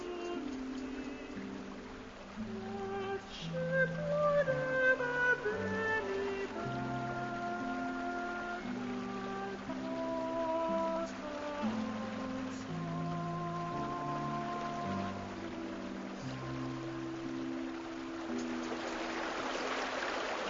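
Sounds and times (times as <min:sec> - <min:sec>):
swift water of a great river rushing around a boat riding low under heavy baggage: 0:00.0 - 0:20.4.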